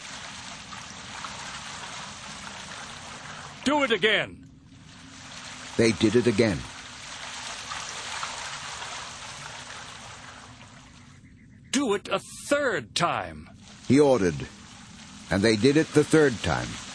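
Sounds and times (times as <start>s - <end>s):
water poured from large jars onto an offering and wood on an altar: 0.0s - 3.7s, 4.7s - 11.0s, 13.6s - 16.9s
speech: 3.6s - 4.4s, 5.8s - 6.7s, 11.9s - 14.6s, 15.3s - 16.8s.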